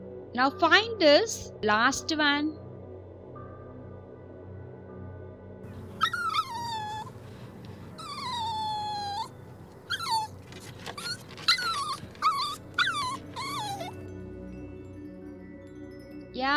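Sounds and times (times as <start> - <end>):
speech: 0.3 - 2.6
puppy whimpering and yelping: 5.8 - 14.0.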